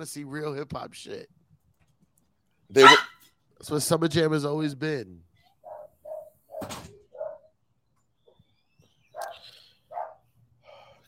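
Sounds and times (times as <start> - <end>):
speech: 0.0 - 1.4, 2.7 - 5.3
dogs barking: 2.8 - 3.2, 5.6 - 7.5, 9.1 - 10.3.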